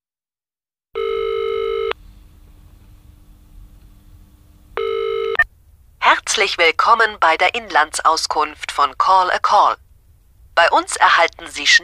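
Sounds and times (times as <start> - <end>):
telephone ringback tone calling a telephone service: 1.0 - 2.0, 4.8 - 5.4
speech: 6.4 - 9.8, 10.6 - 11.8.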